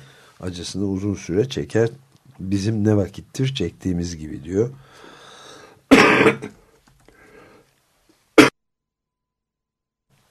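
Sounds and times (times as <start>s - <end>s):
speech: 0.4s - 5.0s, 6.2s - 6.6s
coughing: 5.9s - 6.6s.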